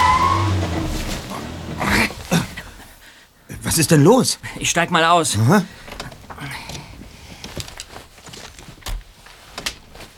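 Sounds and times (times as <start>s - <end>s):
car brakes screeching: 0.0s - 2.8s
car engine droning, sputtering and dying: 0.0s - 2.8s
speech: 3.8s - 6.0s.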